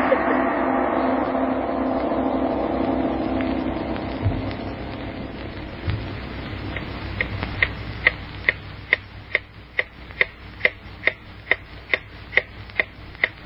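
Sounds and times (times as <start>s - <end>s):
faint low hum: 0.0s - 13.4s
clock ticking: 5.6s - 13.4s.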